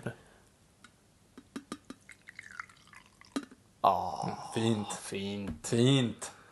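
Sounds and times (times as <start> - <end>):
small fizzy pops of soda: 1.9 - 3.6
julmust soda pouring into a glass: 2.0 - 3.4
speech: 3.9 - 6.4.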